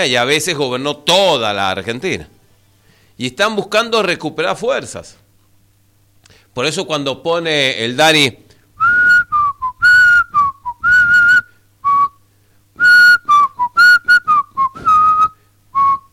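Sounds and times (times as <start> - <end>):
speech: 0.0 - 2.4, 3.2 - 5.2, 6.6 - 8.4
person softly whistling a melody: 8.8 - 12.2, 12.8 - 16.1.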